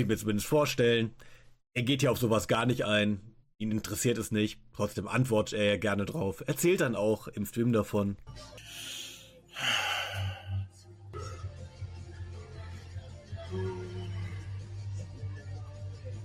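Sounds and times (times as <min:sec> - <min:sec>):
speech: 0:00.0 - 0:08.9, 0:09.6 - 0:09.9
loud open-mouthed yawn without covering mouth: 0:08.6 - 0:11.5.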